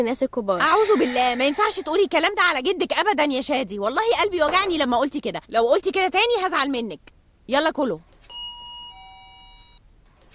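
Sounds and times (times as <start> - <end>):
speech: 0.0 - 8.1
two-tone electronic doorbell chime at a home's front door: 8.3 - 9.8.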